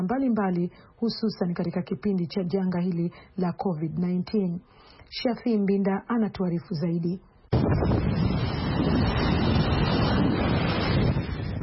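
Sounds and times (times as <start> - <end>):
speech: 0.0 - 8.4
strong wind on the Mediterranean shore at Alexandria: 7.5 - 11.6
waves breaking on the Mediterranean shore at Alexandria: 7.6 - 11.6.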